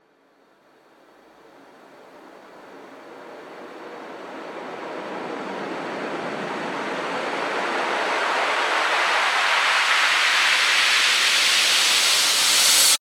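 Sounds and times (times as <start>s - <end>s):
rising uplifter sweep: 5.0s - 13.0s.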